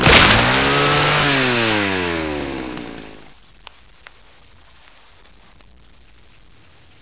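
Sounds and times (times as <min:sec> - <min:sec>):
chainsaw attack hit: 0:00.0 - 0:03.3.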